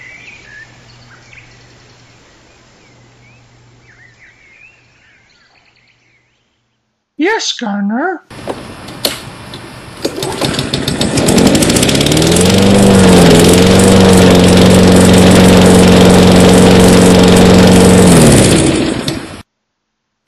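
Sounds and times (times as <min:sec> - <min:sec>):
speech: 0:07.2 - 0:08.4
small petrol engine started with the choke set on the carburetor: 0:08.3 - 0:19.4.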